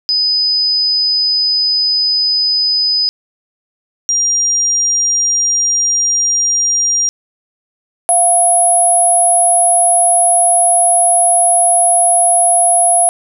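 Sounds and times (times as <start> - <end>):
mixed 5000 Hz and 5700 Hz tones: 8.1 - 13.1.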